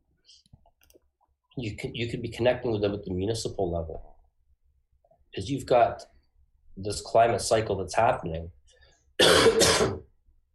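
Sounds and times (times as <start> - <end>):
speech: 1.6 - 4.2, 5.4 - 6.1, 6.8 - 8.6, 9.2 - 10.1
person clearing throat and coughing: 9.2 - 10.1.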